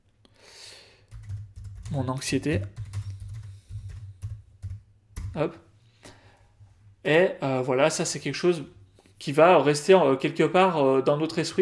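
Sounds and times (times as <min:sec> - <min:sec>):
typing on a computer keyboard: 0:01.1 - 0:05.4
speech: 0:01.9 - 0:02.8, 0:05.4 - 0:05.7, 0:07.0 - 0:11.5.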